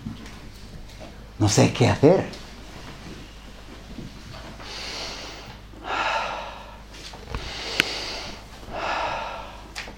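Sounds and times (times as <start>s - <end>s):
speech: 1.4s - 2.4s
person imitating deep breathing: 4.6s - 9.9s.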